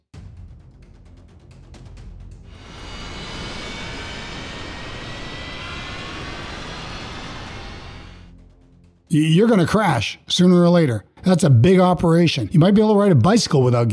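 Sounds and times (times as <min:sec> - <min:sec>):
jumbo jet aircraft engines roaring: 0:02.5 - 0:08.3
speech: 0:09.1 - 0:13.9.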